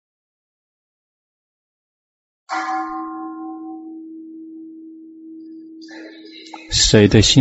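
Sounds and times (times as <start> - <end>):
speech: 2.5 - 3.2, 6.7 - 7.4
bell being struck and ringing: 2.5 - 7.4.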